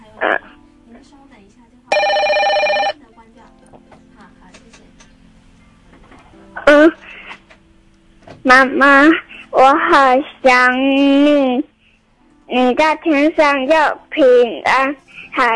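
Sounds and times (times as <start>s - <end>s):
telephone bell ringing: 1.9s - 3.0s
speech: 8.5s - 11.7s, 12.5s - 15.5s.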